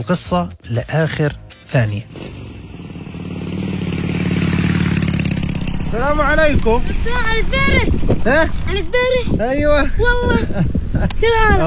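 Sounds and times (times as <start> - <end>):
speech: 0.0 - 2.4, 5.9 - 11.6
motorcycle engine revving: 2.0 - 8.4.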